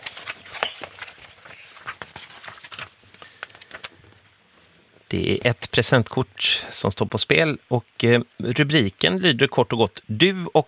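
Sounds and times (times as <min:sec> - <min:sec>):
pages of a binder being flipped through: 0:00.0 - 0:04.8
speech: 0:05.1 - 0:10.6.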